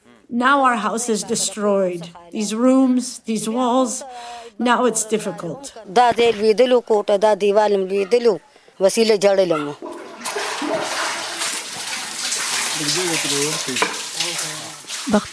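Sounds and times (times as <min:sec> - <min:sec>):
speech: 0:00.3 - 0:09.9, 0:12.8 - 0:14.0, 0:15.1 - 0:15.3
water splashing as a floor is washed in a flood-damaged house: 0:09.8 - 0:15.3.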